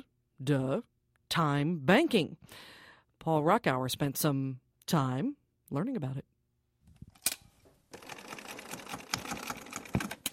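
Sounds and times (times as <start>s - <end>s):
speech: 0.4s - 6.3s
sewing machine stitching while hemming clothes: 7.9s - 10.3s
sharp clicks and thumps: 9.0s - 10.3s.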